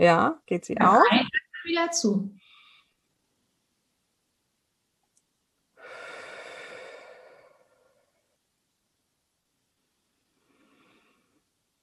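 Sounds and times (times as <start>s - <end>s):
speech: 0.0s - 2.4s
slow deliberate exhale during breathing exercise: 5.8s - 8.2s, 10.3s - 11.5s
soft breath: 5.8s - 8.3s, 10.2s - 11.5s.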